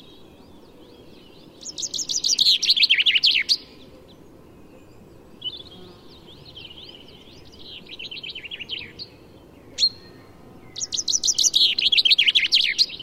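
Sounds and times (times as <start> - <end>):
common chaffinch Fringilla coelebs song: 0.0 - 13.0.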